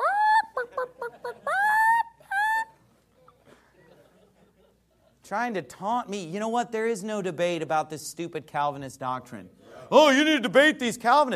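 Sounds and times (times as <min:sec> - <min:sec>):
chicken squawking and clucking: 0:00.0 - 0:02.8
laughter: 0:00.0 - 0:05.2
speech: 0:05.3 - 0:11.3.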